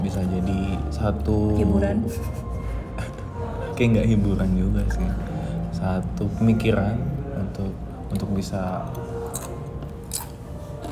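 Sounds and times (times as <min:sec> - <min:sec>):
speech: 0:00.1 - 0:02.4, 0:03.8 - 0:09.1
laughter: 0:02.0 - 0:03.6
crunchy snack being bitten and chewed: 0:09.2 - 0:10.8.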